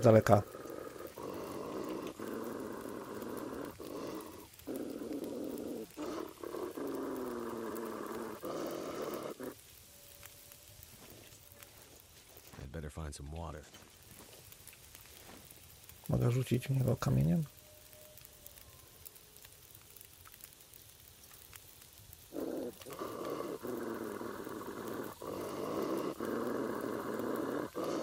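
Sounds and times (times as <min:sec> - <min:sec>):
speech: 0:00.0 - 0:00.6, 0:16.2 - 0:17.6
wolf growling: 0:00.0 - 0:09.6, 0:22.3 - 0:28.0.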